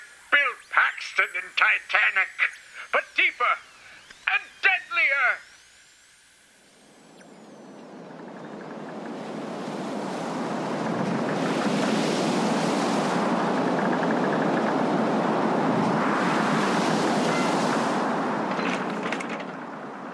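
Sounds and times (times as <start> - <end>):
speech: 1.0 - 3.7, 4.3 - 5.5
rough sea waves crashing: 8.5 - 20.1
gusty wind buffeting the microphone: 8.7 - 18.5.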